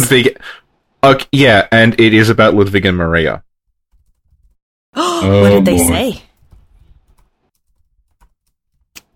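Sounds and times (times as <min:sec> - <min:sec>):
speech: 0:00.1 - 0:03.5, 0:05.0 - 0:06.3
typing on a computer keyboard: 0:03.9 - 0:04.6, 0:06.3 - 0:09.1.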